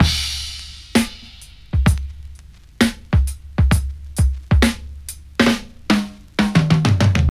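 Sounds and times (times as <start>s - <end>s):
2000s drum beat at 96 bpm in D sharp key: 0.0s - 7.2s.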